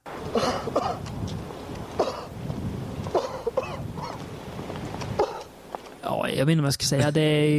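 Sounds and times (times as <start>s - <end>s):
actor fake coughing in a film: 0.3s - 1.0s, 2.0s - 2.3s, 3.1s - 3.8s, 5.2s - 5.5s
speech: 6.4s - 7.5s.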